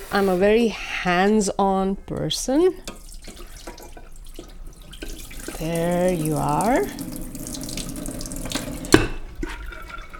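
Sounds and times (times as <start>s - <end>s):
speech: 0.1s - 3.0s, 5.6s - 7.2s
water trickling: 2.8s - 9.0s
water pouring into a cooking pot: 2.9s - 10.1s.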